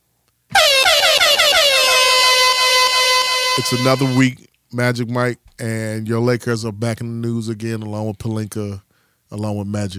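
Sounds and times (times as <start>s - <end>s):
loud blaring air horn blast sound effect: 0.5s - 4.4s
speech: 3.6s - 9.9s.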